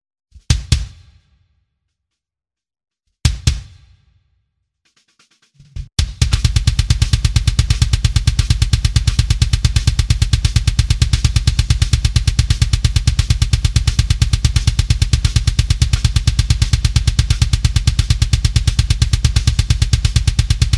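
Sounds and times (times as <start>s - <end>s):
live kick drum with added punchy kick drum sample for more attack: 0.4s - 1.3s, 3.3s - 4.1s, 6.0s - 20.7s.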